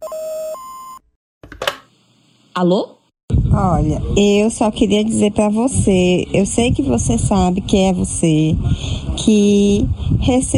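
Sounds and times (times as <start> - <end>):
electronic phone-line beep signalling a caller to speak: 0.0 - 1.0
speech: 2.6 - 10.5.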